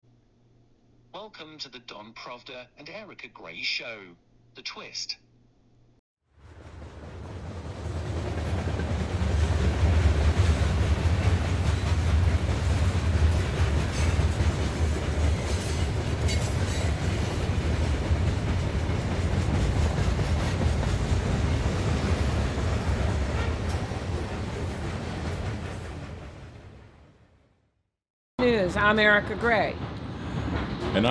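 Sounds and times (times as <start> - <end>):
speech: 1.2 - 5.2, 28.7 - 29.9
train rumbling and clattering along the rails: 6.5 - 26.8, 28.8 - 31.0.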